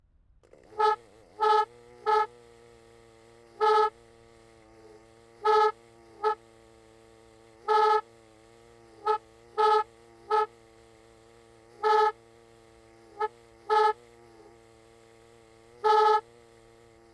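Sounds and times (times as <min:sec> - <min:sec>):
broken martin siren horn close up: 0:00.6 - 0:02.5, 0:03.5 - 0:04.0, 0:05.4 - 0:06.5, 0:07.6 - 0:08.1, 0:09.0 - 0:10.6, 0:11.7 - 0:12.2, 0:13.2 - 0:14.1, 0:15.8 - 0:16.4.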